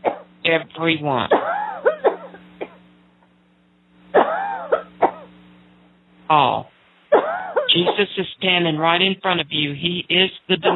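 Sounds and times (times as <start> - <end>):
steady low hum: 0.0 - 10.7
speech: 0.5 - 1.6, 6.3 - 6.7, 7.8 - 10.7
people coughing: 1.3 - 2.8, 4.1 - 5.3, 7.1 - 8.2.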